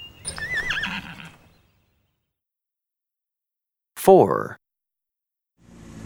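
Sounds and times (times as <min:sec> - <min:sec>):
horse whinnying: 0:00.3 - 0:01.5
speech: 0:04.0 - 0:04.6.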